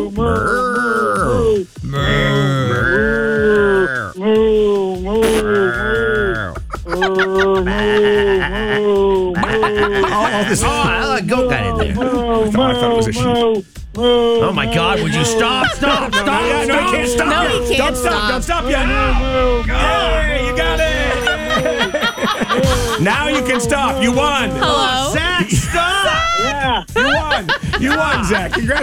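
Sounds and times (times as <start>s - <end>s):
speech: 0.0s - 0.6s, 10.5s - 20.0s, 23.0s - 26.8s, 27.4s - 28.8s
overlapping vocal noise: 0.0s - 4.1s, 5.1s - 8.6s, 9.2s - 13.5s, 14.4s - 18.5s, 20.6s - 28.8s
person imitating a cow mooing during a game: 0.0s - 4.2s, 5.1s - 6.7s
laughter: 5.4s - 13.4s, 14.4s - 28.8s.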